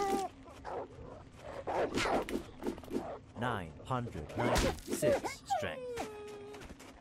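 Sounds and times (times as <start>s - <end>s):
speech: 1.8s - 2.5s, 3.4s - 5.9s
dog whining in a video game: 5.3s - 6.8s.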